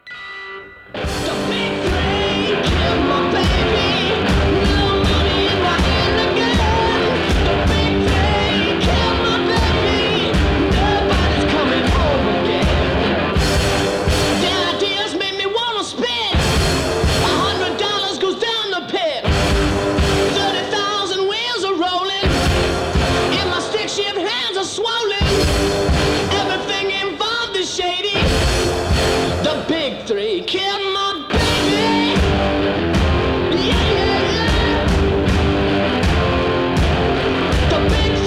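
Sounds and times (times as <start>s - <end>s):
gritty guitar in a garage rock song: 0.0s - 38.2s
person singing in a garage rock song: 1.0s - 13.3s, 14.2s - 16.5s, 17.1s - 19.3s, 20.1s - 22.4s, 23.1s - 28.5s, 29.3s - 35.3s, 37.6s - 38.2s
pounding drums in a loud raw garage rock song: 1.0s - 14.9s, 16.3s - 17.7s, 22.2s - 23.8s, 25.2s - 27.0s, 28.2s - 29.7s, 31.3s - 38.2s.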